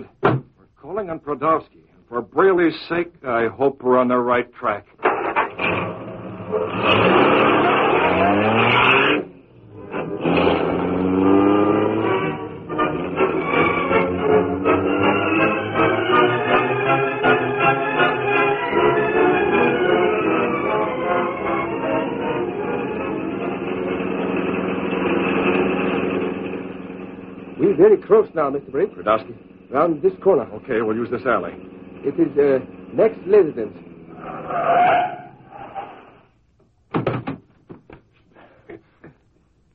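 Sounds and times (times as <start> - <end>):
speech: 1.0 - 4.9, 5.6 - 7.2, 28.1 - 33.9
car engine running as the car is driven: 5.0 - 36.3.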